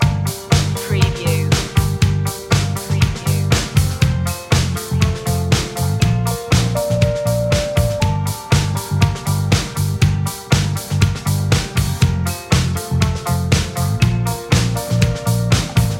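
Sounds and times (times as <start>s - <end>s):
catchy groove loop: 0.0s - 15.9s.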